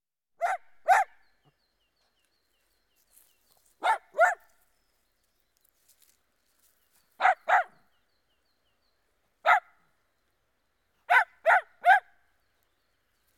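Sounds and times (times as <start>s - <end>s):
dachshund barking outdoors: 0.4s - 1.2s, 3.8s - 4.5s, 7.2s - 7.8s, 9.4s - 9.8s, 11.1s - 12.2s.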